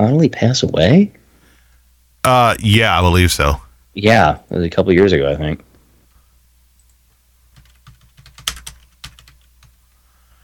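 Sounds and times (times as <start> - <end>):
speech: 0.0 - 1.2, 2.2 - 5.7
typing on a computer keyboard: 6.8 - 9.8.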